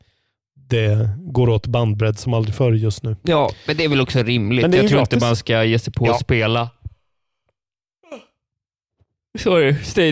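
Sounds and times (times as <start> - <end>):
speech: 0.7 - 6.8, 9.3 - 10.1
person yawning: 8.0 - 8.4.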